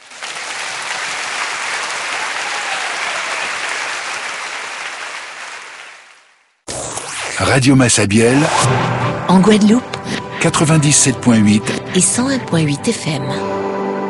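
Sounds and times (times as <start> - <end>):
church congregation applauding in praise: 0.0 - 6.5
speech: 7.4 - 13.6.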